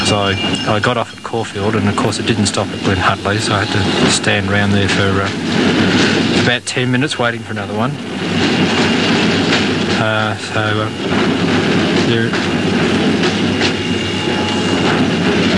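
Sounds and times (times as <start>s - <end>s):
train horn blasts: 0.0s - 1.0s, 2.8s - 4.6s, 13.6s - 15.5s
express train passing through a station: 0.0s - 15.5s
speech: 0.1s - 8.9s, 10.0s - 12.6s.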